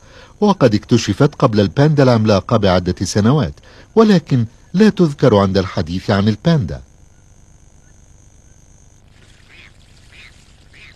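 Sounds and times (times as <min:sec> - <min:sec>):
steady hiss: 0:00.0 - 0:10.9
speech: 0:00.4 - 0:06.9
Mandarin duck calling: 0:09.4 - 0:10.9.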